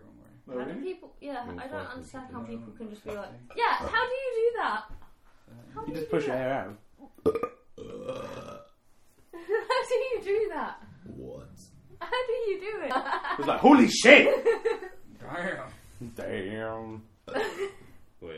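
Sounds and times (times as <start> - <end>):
speech: 0.5 - 7.5, 9.8 - 10.8, 11.6 - 18.3
loud drawn-out burp: 7.2 - 8.8.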